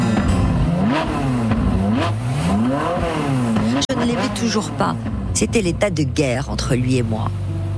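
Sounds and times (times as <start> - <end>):
sports car engine revving and accelerating through gears: 0.0 - 7.5
speech: 4.0 - 7.5.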